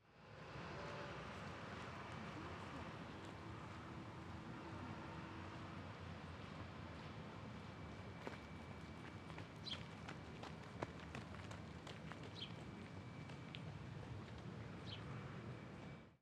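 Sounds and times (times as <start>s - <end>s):
car: 0.0s - 16.2s
running footsteps on gravel: 8.2s - 14.4s.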